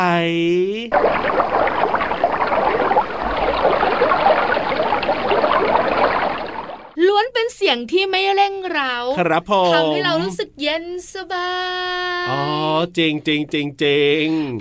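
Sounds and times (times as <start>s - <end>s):
speech: 0.0s - 2.0s, 7.2s - 14.5s
steady rushing water: 0.9s - 7.0s.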